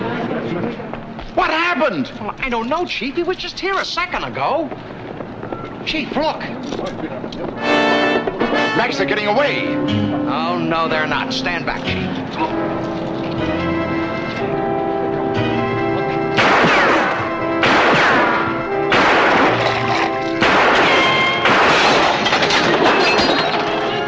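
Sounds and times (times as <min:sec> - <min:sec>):
speech: 0:00.5 - 0:04.9, 0:05.8 - 0:08.0, 0:08.8 - 0:13.5
music: 0:07.6 - 0:24.0
gunshots: 0:16.3 - 0:23.6.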